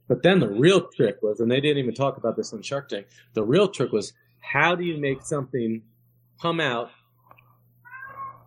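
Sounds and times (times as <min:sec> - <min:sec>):
low steady hum: 0:00.0 - 0:08.4
speech: 0:00.1 - 0:07.0
domestic cat meowing: 0:07.8 - 0:08.4.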